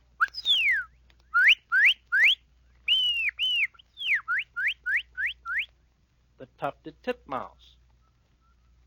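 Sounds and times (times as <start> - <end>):
person whistling an imitation of a cardinal's song: 0.2 - 5.7
speech: 6.5 - 7.7.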